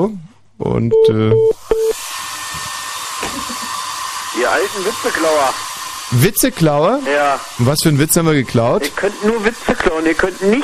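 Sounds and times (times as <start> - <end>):
speech: 0.0 - 2.0, 4.4 - 10.6
hair dryer blowing: 1.9 - 10.6.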